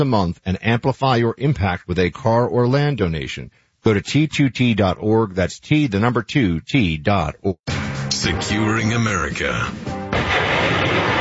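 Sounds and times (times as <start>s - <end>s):
speech: 0.0s - 10.0s
truck-mounted high-mobility artillery rocket system firing near Mount Fuji in Japan: 10.1s - 11.1s.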